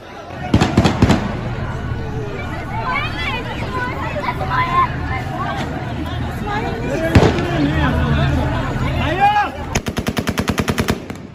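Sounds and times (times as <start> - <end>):
noisy crowd in Kabul: 0.0 - 11.3
rapid gunfire as the Taliban enter the city: 0.5 - 1.8, 9.8 - 11.3.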